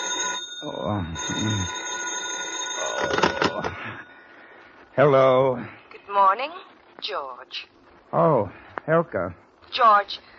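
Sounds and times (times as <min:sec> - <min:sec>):
telephone ringing: 0:00.0 - 0:04.4
speech: 0:00.8 - 0:01.8, 0:03.0 - 0:04.1, 0:05.0 - 0:10.3.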